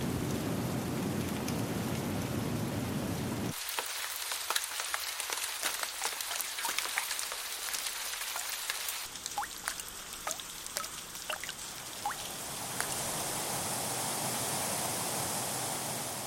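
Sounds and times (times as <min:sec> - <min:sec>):
heavy tropical downpour drenching a jungle: 0:00.0 - 0:16.2.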